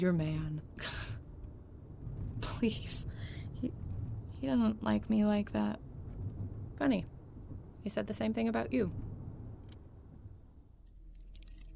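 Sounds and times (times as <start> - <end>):
speech: 0.0 - 1.0, 2.6 - 3.8, 4.4 - 5.9, 6.8 - 7.2, 7.8 - 9.1
low steady rumble: 0.0 - 11.7
keys jangling while unlocking a door: 10.8 - 11.7.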